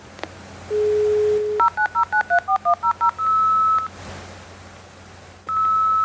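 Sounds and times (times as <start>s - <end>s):
dial-up modem dial tone: 0.7s - 3.9s, 5.5s - 6.0s.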